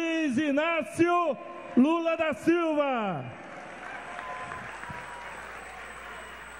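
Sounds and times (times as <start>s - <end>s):
speech: 0.4s - 3.4s
large crowd clapping for the President of the Republic at a morning event: 3.4s - 6.5s.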